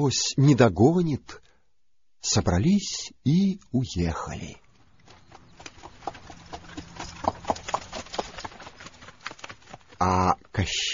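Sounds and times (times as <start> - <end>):
speech: 0.0 - 1.4, 2.2 - 4.6, 10.0 - 10.9
horse hooves clip-clopping: 4.6 - 10.9.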